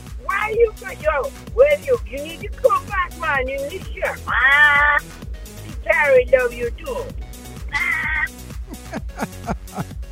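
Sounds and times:
rhythmic music: 0.0s - 10.1s
speech: 0.5s - 5.2s, 5.9s - 7.4s, 9.2s - 10.0s
parrot squawk: 4.3s - 5.0s, 7.7s - 8.3s
laughter: 7.8s - 10.1s.

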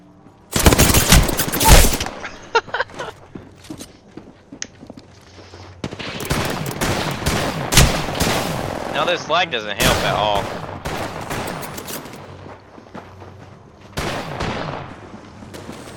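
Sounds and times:
video game gunfire: 0.5s - 2.2s, 5.9s - 9.2s, 9.8s - 12.0s
speech: 9.0s - 10.6s.

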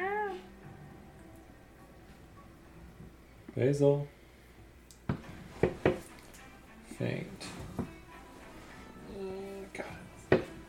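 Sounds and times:
person imitating a cat meow: 0.0s - 0.5s
quiet hum: 0.0s - 10.6s
speech: 3.6s - 4.2s.

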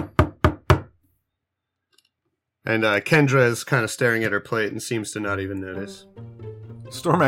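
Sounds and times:
knocks on a wooden door: 0.0s - 0.9s
speech: 2.7s - 6.3s, 6.9s - 7.2s.

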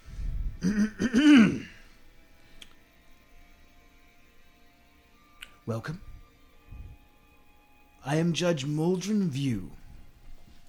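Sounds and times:
speech: 0.6s - 1.3s, 5.7s - 6.1s, 8.1s - 9.8s
person clearing throat: 0.6s - 1.8s.

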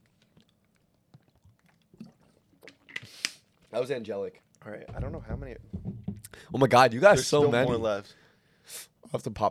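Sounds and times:
sipping water from a glass: 0.0s - 3.7s
speech: 3.7s - 5.8s, 6.5s - 9.4s.

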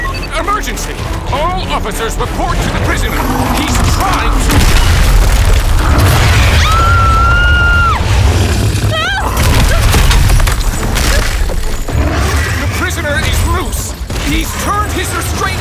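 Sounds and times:
speech: 0.6s - 4.8s, 14.3s - 15.5s
giant reinforced concrete chunks crashing like wrecking balls: 2.6s - 14.5s.

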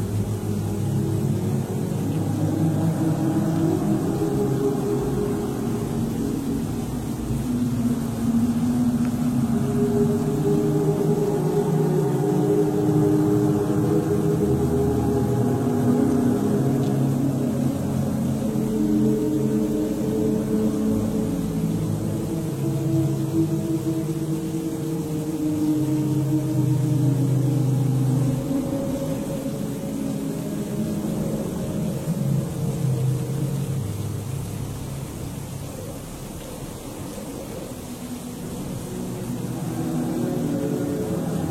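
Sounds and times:
low rumble of wind and weather on a stormy night in a monastery: 0.0s - 41.4s.

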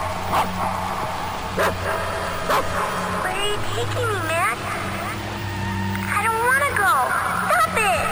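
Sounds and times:
steady low engine-like hum: 0.0s - 8.1s
dog barking: 0.3s - 0.8s, 1.6s - 3.2s.

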